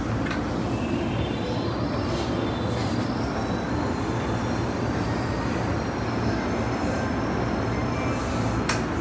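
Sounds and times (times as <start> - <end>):
train sounds on the Keihin-Tohoku Line south of Kawasaki: 0.0 - 9.0.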